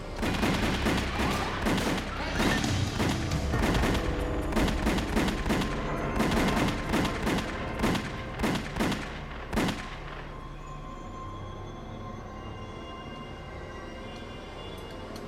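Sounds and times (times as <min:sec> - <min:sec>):
rapid gunshots fired at close range: 0:00.2 - 0:10.1.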